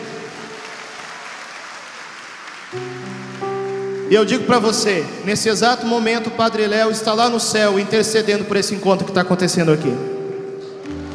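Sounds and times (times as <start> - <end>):
crowd applauding: 0.0 - 6.0, 10.9 - 11.1
speech: 2.7 - 3.1, 4.1 - 10.2
sustained musical chords: 2.8 - 5.8, 10.0 - 11.1.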